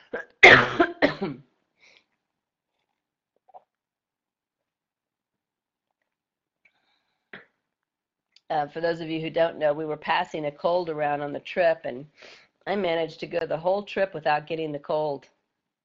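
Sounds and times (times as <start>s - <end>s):
person coughing: 0.0s - 1.5s
speech: 1.2s - 1.5s, 8.5s - 15.3s.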